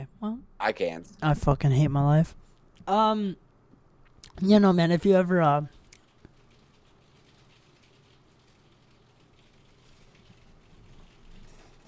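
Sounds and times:
speech: 0.1 - 3.4, 4.4 - 5.8
rain picked up through a microphone: 4.4 - 11.8.

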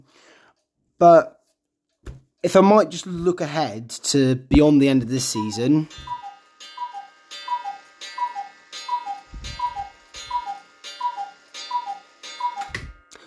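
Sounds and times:
speech: 1.0 - 1.4, 2.4 - 6.2
crisp ticking of cuckoo clock mechanism: 4.6 - 12.8
cuckoo clock two-note call: 5.2 - 13.2.

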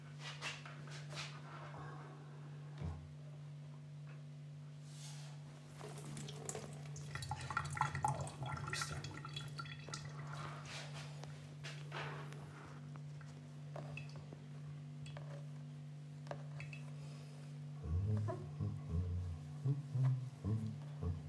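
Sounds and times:
steady low electrical hum: 0.0 - 21.2
sponge wiping water out of a container: 5.0 - 11.2.

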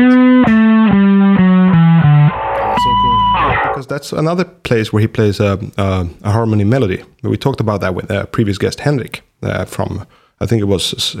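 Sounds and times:
heavily distorted bass guitar riff: 0.0 - 3.8
speech: 4.0 - 11.1.

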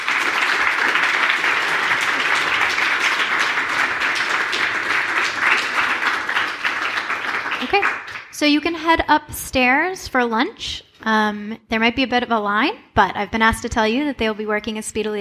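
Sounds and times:
crowd applauding: 0.0 - 8.4
speech: 7.7 - 15.1.

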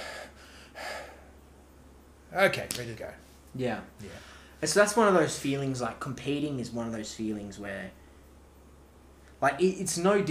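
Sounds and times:
deep slow calming breaths: 0.0 - 1.4, 4.0 - 4.6
speech: 2.3 - 8.0, 9.4 - 10.2.

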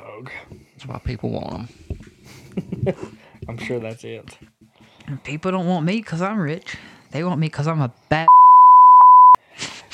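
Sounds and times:
speech: 0.2 - 4.5, 5.1 - 8.3
censor bleep over profanity: 8.3 - 9.4.

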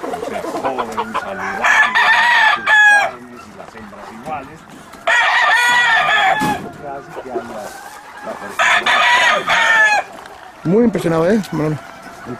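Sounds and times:
faint murmuring: 0.0 - 12.3
hens clucking: 0.0 - 12.3
rooster crowing loudly: 1.0 - 3.2, 5.0 - 10.2
speech: 10.6 - 12.3.

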